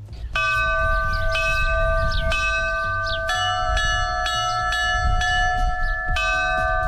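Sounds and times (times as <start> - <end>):
church bell tolling a traditional ringing pattern from Navarra, Spain: 0.4 - 6.8.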